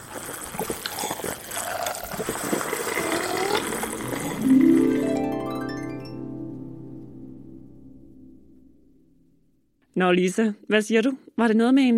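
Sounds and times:
thick smoothie pouring into glasses: 0.0 - 6.3
speech: 10.0 - 11.9.

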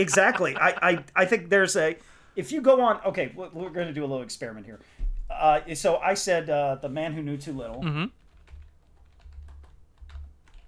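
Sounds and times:
laughter: 0.0 - 1.5
speech: 0.0 - 8.2
typing on a computer keyboard: 8.2 - 10.6.

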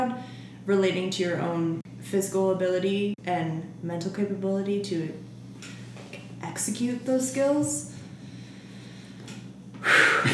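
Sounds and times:
speech: 0.7 - 5.3, 6.6 - 7.9
person inhaling deeply: 9.8 - 10.3.

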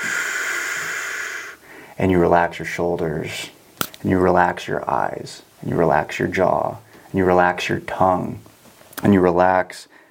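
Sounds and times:
slow exhale through tightly pursed lips: 0.0 - 1.9
speech: 2.0 - 10.0.

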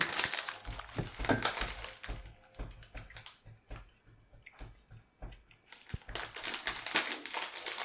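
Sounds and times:
crunching on crisp glass-like chips: 0.0 - 2.2, 5.7 - 7.8.

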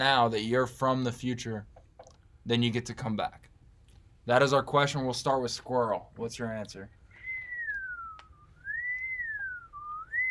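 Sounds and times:
speech: 0.0 - 1.7, 2.4 - 3.5, 4.2 - 7.0
person whistling a wavering tune: 7.1 - 10.2.

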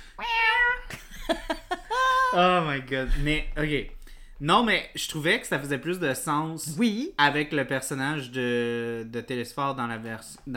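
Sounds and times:
cat making short clipped chirps: 0.1 - 0.9
cat meowing: 0.2 - 0.9
laughter: 0.9 - 2.4
speech: 2.3 - 10.5.

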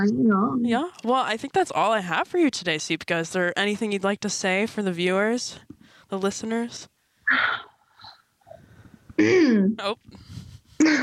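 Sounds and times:
speech: 0.0 - 7.7, 9.2 - 11.0
person clearing throat: 9.2 - 9.6, 10.8 - 11.0.

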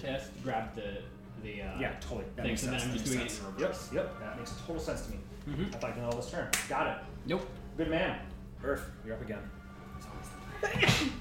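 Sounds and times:
speech: 0.0 - 11.2
person sneezing: 10.6 - 11.2.

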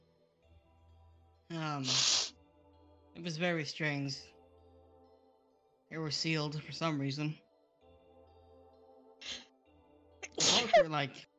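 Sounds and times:
speech: 1.5 - 2.2, 3.2 - 4.4, 5.9 - 7.4, 10.8 - 11.3
person sneezing: 1.8 - 2.3, 10.2 - 10.9
quick hissy intake of breath: 1.8 - 2.3.

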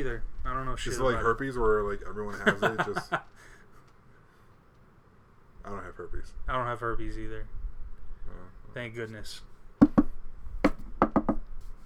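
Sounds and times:
speech: 0.0 - 3.6, 5.6 - 7.6, 8.2 - 9.9
laughter: 2.3 - 3.3
knocking on wood: 9.8 - 11.5.

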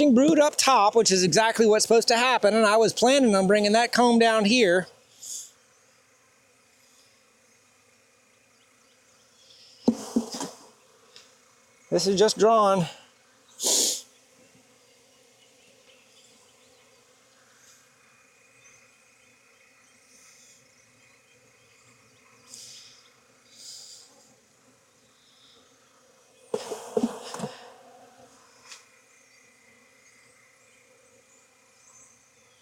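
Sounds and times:
speech: 0.0 - 5.0, 11.9 - 13.0, 13.6 - 14.0
many honeybees buzzing around an open hive: 0.0 - 32.6
rustling and clatter: 9.8 - 10.7.

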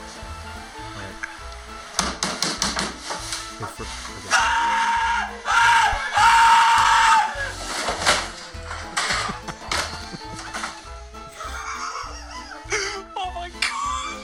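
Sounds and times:
clattering knocking wooden thumps of man tumbling off a dining table: 1.2 - 11.3
laughter: 3.6 - 14.2
drunk man screaming as he falls: 4.3 - 7.6, 13.0 - 14.2.

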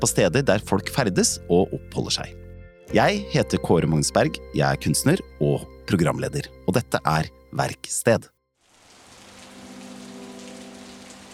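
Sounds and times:
speech: 0.0 - 8.4
rain pouring in a prison exercise yard in late November: 8.6 - 11.3.

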